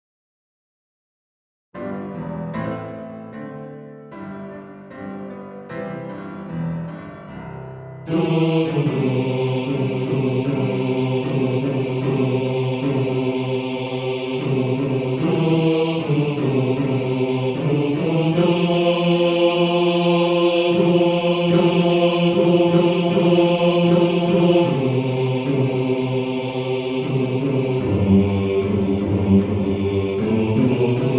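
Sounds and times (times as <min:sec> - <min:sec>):
bass section of a male choir singing: 0:08.1 - 0:31.1.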